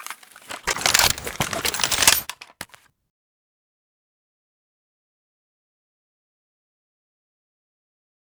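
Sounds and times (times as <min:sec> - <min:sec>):
SV98 rifle reloading: 0:00.0 - 0:02.8.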